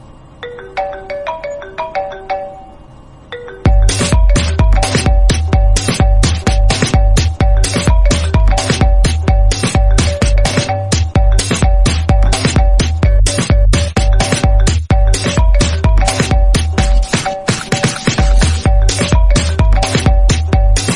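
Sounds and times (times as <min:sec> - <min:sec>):
fast music phone ringtone: 0:00.4 - 0:20.9.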